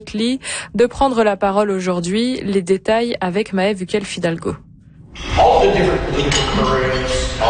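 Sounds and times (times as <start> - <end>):
speech: 0.1 - 7.4
cutlery clinking against plates at a club lunch in Edmonton Alberta: 6.2 - 7.2.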